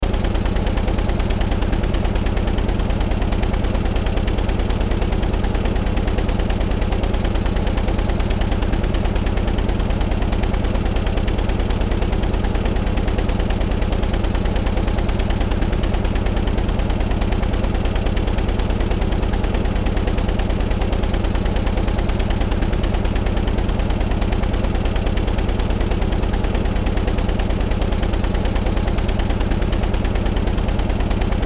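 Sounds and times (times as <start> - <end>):
large industrial motor engine running: 0.0 - 31.4.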